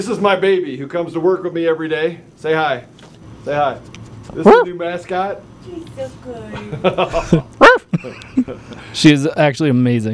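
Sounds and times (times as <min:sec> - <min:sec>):
speech: 0:00.0 - 0:10.1
dog barking sharply: 0:04.4 - 0:04.8, 0:07.6 - 0:07.9
person chuckling: 0:06.5 - 0:08.7.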